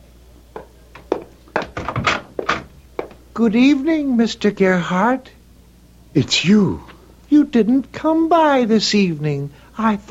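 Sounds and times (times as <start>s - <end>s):
wooden door thunks and clunks as it is pulled open: 1.6s - 2.7s
speech: 3.4s - 5.4s, 6.1s - 10.0s.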